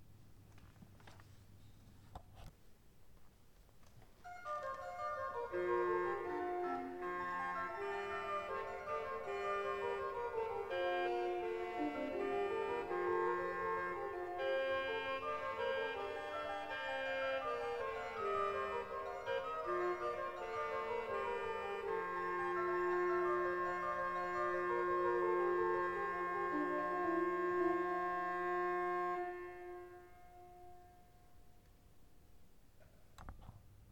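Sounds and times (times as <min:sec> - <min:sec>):
pipe organ regal reed stop playing a melody: 0:04.4 - 0:30.2.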